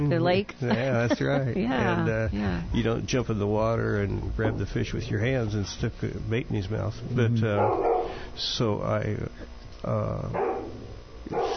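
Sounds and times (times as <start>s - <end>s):
speech: 0.0s - 10.6s, 11.3s - 11.5s
dog barking: 7.6s - 8.1s, 10.4s - 10.7s, 11.3s - 11.5s.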